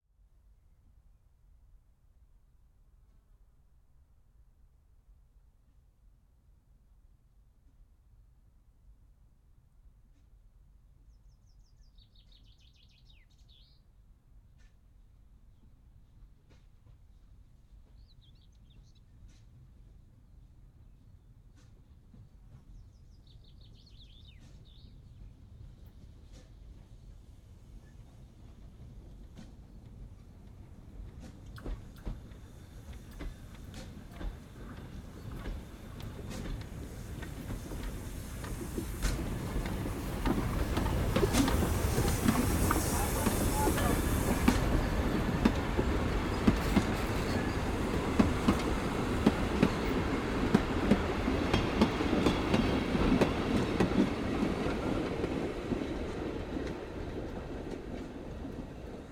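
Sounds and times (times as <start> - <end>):
steam train passing by slowly, chuffing: 28.5 - 59.1
rail clatter: 30.4 - 59.1
voices: 38.4 - 53.3.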